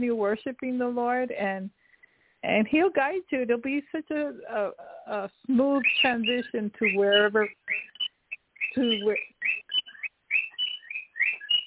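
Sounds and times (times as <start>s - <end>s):
speech: 0.0s - 1.8s, 2.4s - 7.9s, 8.7s - 9.6s
pet bird chirping and whistling: 5.3s - 11.6s.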